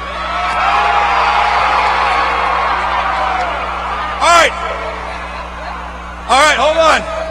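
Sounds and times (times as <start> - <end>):
loud sharp whoop: 0.0 - 5.0
large crowd roaring and cheering: 0.0 - 7.2
laughter: 2.0 - 6.3.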